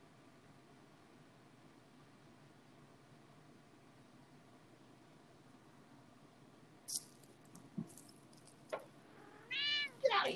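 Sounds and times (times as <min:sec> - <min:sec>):
female cat in heat meowing: 0:09.1 - 0:10.0.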